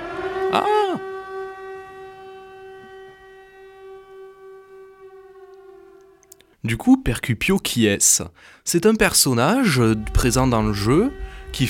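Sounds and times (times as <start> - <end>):
loud warning siren wail from a horror video game sweeping downward: 0.0 - 6.4, 9.5 - 11.6
steady droning tone of a warning siren from a horror video game: 0.0 - 6.5, 9.6 - 11.6
speech: 0.5 - 0.8, 6.7 - 11.6.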